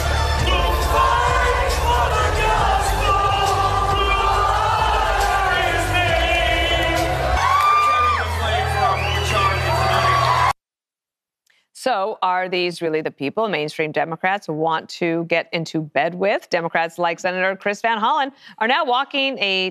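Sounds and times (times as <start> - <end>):
crowd cheering at an event: 0.0 - 10.6
whoops and shouts: 7.3 - 10.6
speech: 11.9 - 19.6.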